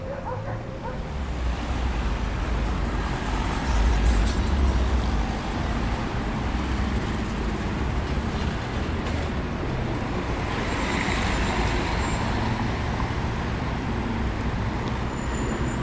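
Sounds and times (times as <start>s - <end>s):
dog barking: 0.0s - 1.1s
engines rumbling low: 0.0s - 15.8s
heavy city street traffic roar in an open area: 0.0s - 15.8s.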